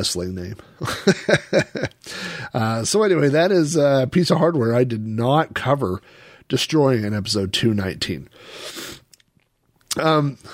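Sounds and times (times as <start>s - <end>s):
speech: 0.0s - 8.9s, 10.0s - 10.5s
laughter: 0.8s - 2.0s
person sniffling with a congested nose: 2.0s - 2.5s, 8.4s - 9.1s.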